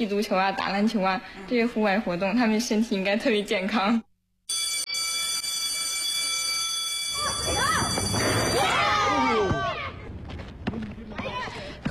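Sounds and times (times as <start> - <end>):
speech: 0.0 - 4.1
school bell ringing for end of class: 4.5 - 9.9
children's excited shouts and voices: 7.2 - 10.2.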